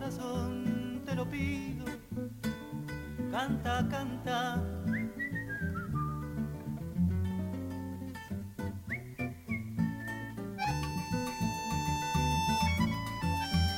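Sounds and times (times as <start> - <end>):
instrumental song accompaniment: 0.0 - 13.7
speech: 0.1 - 2.3, 3.4 - 4.6
person whistling a melody imitating a little bird: 4.8 - 6.4, 8.9 - 13.7.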